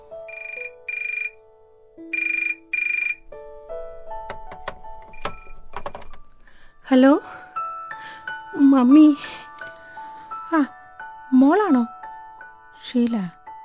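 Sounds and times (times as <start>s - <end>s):
electronic telephone tones as a call is placed: 0.3s - 1.4s, 2.1s - 3.2s
speech: 6.9s - 7.4s, 8.6s - 9.4s, 10.5s - 11.9s, 12.9s - 13.4s.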